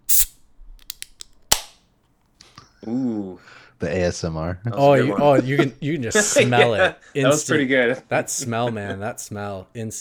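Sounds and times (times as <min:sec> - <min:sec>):
crisp crack with a short hiss: 0:00.0 - 0:00.4
beer bottle opening with pop and fizz: 0:00.0 - 0:01.7
speech: 0:02.8 - 0:10.0
laughter: 0:05.1 - 0:07.1.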